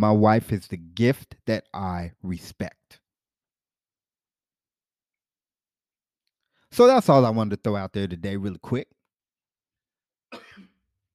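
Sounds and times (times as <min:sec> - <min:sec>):
speech: 0:00.0 - 0:02.8, 0:06.7 - 0:09.0
raspy throat clearing from a throat tickle: 0:10.3 - 0:10.8
faint cough from a throat tickle: 0:10.3 - 0:10.9.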